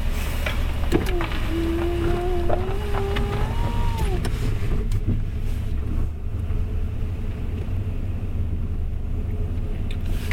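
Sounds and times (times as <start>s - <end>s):
car engine and road rumble from inside a moving car: 0.0s - 10.3s
car tyres crunching over ice: 0.8s - 4.3s.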